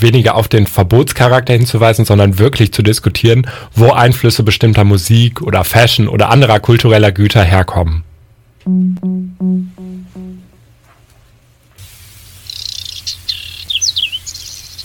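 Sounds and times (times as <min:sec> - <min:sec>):
speech: 0:00.0 - 0:10.3
low droning tones: 0:08.7 - 0:10.6.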